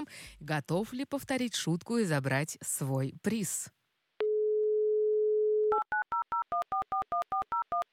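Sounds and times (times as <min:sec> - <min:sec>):
speech: 0:00.0 - 0:03.8
telephone dial tone: 0:04.2 - 0:07.8.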